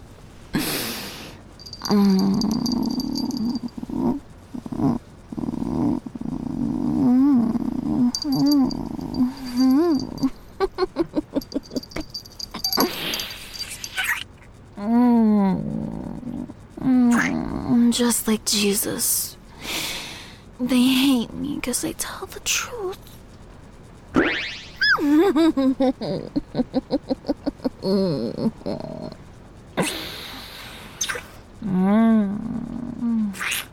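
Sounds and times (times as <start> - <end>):
person imitating cat purring with meow-like chirps: 0.6 - 14.2, 14.8 - 18.1, 25.7 - 29.2, 29.8 - 33.7
speech: 1.9 - 3.1, 18.3 - 19.3, 20.6 - 23.2, 25.3 - 29.1, 31.6 - 32.6.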